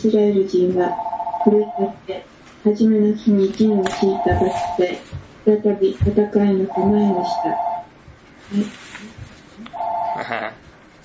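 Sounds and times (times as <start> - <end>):
speech: 0.0 - 7.7, 8.5 - 9.1, 10.2 - 11.0
telephone ringing with an electronic two-tone trill: 0.8 - 2.0, 3.7 - 5.0, 6.7 - 7.9, 9.7 - 10.4.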